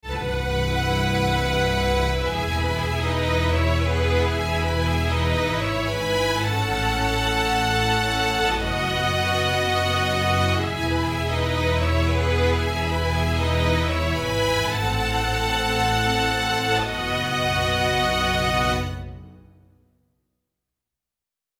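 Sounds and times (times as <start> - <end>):
strings: 0.0 - 19.7.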